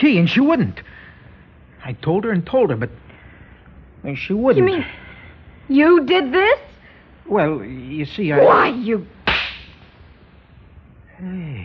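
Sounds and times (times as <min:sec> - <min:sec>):
speech: 0:00.0 - 0:01.0, 0:01.8 - 0:03.1, 0:04.0 - 0:05.0, 0:05.7 - 0:06.7, 0:07.3 - 0:09.2, 0:11.2 - 0:11.6
slap across the face: 0:09.2 - 0:09.8.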